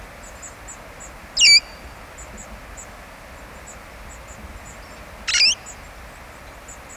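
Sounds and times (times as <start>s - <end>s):
quiet hissing background: 0.0s - 6.9s
red-fronted parrot Poicephalus gulielmi squawking: 1.4s - 1.7s, 5.3s - 5.6s.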